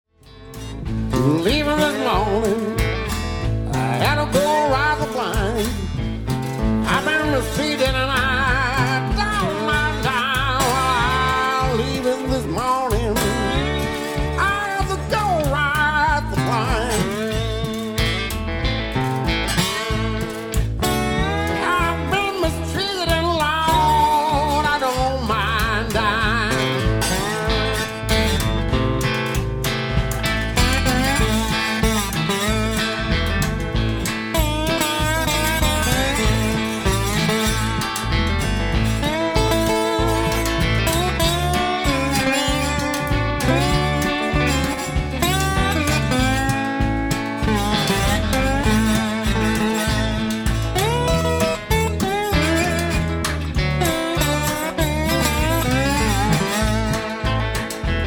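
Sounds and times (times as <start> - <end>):
blues music: 0.0 - 58.0.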